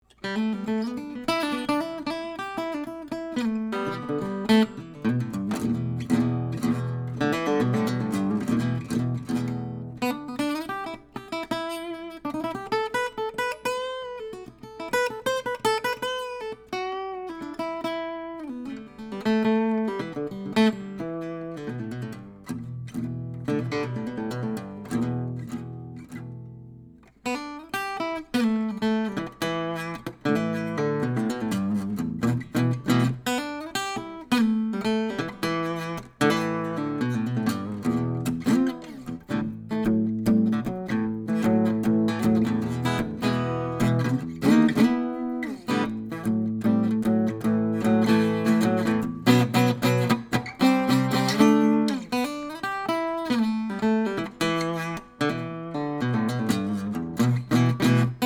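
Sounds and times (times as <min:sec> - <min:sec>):
Gibson L50 guitar playing boogie in E: 0:00.0 - 0:58.2.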